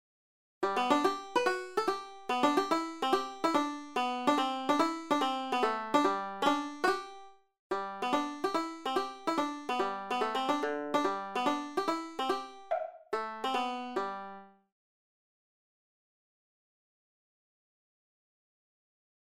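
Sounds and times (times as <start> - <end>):
odd banjo playing: 0.6 - 14.6.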